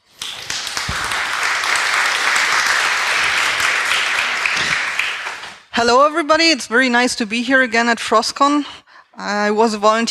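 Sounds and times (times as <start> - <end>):
audience applause in a large room: 0.0 - 5.7
speech: 5.8 - 10.0.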